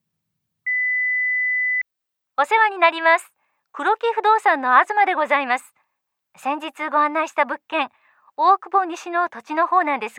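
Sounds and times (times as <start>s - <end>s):
electronic answering machine beep: 0.7s - 1.8s
speech: 2.4s - 5.8s, 6.4s - 10.1s.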